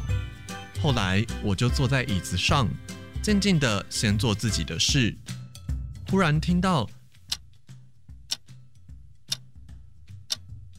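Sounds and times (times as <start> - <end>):
speech: 0.8 - 5.4, 6.1 - 7.0
lost wristwatch ticking: 6.5 - 10.7.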